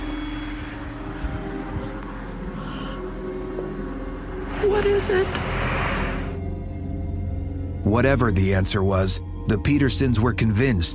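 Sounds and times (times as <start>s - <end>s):
faint sustained trumpet-like hum in the sky: 0.0s - 6.4s
steady traffic rumble: 0.0s - 6.4s
speech: 4.6s - 5.5s, 7.8s - 10.9s.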